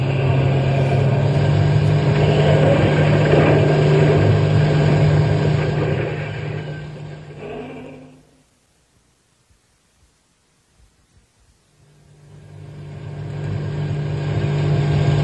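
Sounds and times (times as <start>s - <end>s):
car engine roaring: 0.0s - 8.5s, 11.8s - 15.2s.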